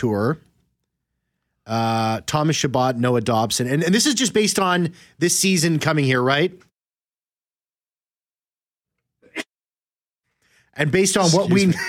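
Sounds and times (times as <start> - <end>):
speech: 0.0 - 0.5, 1.7 - 6.7, 10.8 - 11.8
sneeze: 9.2 - 9.6.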